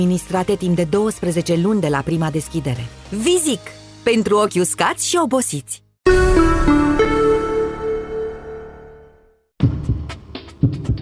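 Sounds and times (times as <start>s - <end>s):
speech: 0.0s - 6.3s
ringing musical chord: 6.1s - 9.4s.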